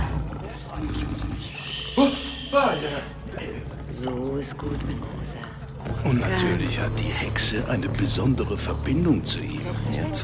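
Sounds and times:
big cat from Malaysia roaring: 0.0 - 7.0
speech: 4.0 - 10.2.

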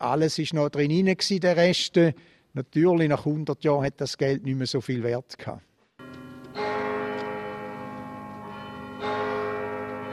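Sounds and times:
speech: 0.0 - 5.7
church bell tolling with deep resonant strikes: 6.0 - 10.1.

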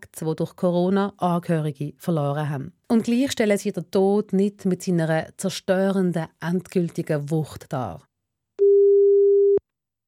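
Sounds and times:
speech: 0.2 - 8.1
telephone ringing tone before call connects: 8.6 - 9.6.

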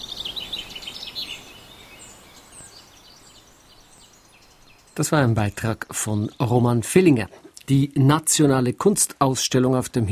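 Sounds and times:
birds chirping and singing outdoors at a historic car cemetery: 0.0 - 7.3
steady hiss: 0.0 - 10.1
speech: 5.0 - 10.1.

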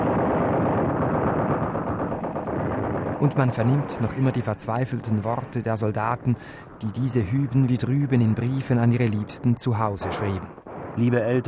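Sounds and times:
machine gun fire on the Verdun battlefield: 0.0 - 4.5
artillery barrage on the Verdun battlefield: 0.0 - 11.4
exploding shells on the Verdun battlefield: 0.0 - 11.4
speech: 3.2 - 11.4.

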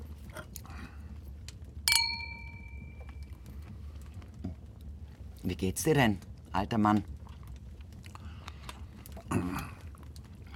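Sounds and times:
low steady rumble: 0.0 - 10.5
glasses clinking in a toast: 1.9 - 3.1
speech: 5.5 - 7.2.

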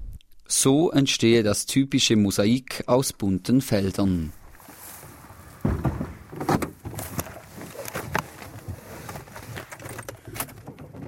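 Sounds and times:
speech: 0.5 - 4.4
car driving: 4.4 - 9.5
car doors shutting: 4.7 - 10.6.

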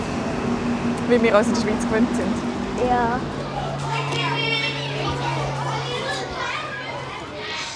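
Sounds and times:
constant low hum: 0.0 - 6.7
speech: 1.1 - 3.4
crowd of children shouting and chattering on a school playground: 2.7 - 7.7.

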